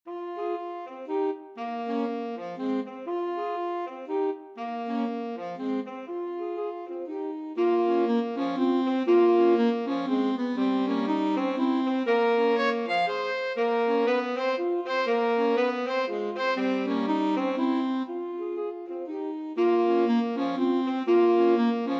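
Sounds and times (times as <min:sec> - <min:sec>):
two alto saxophones: 0:00.1 - 0:21.9.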